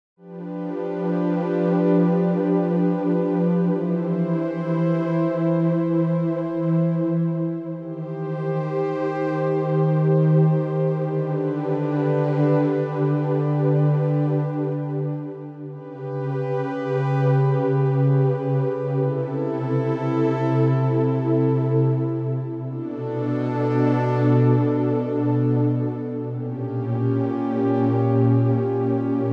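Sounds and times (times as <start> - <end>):
wide synth pad: 0.2 - 29.3.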